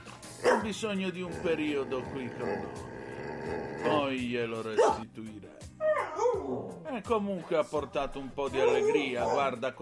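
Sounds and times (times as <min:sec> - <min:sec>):
dog barking: 0:00.4 - 0:00.7, 0:04.8 - 0:05.0, 0:08.6 - 0:09.5
speech: 0:00.7 - 0:02.9, 0:03.4 - 0:05.7, 0:06.4 - 0:09.8.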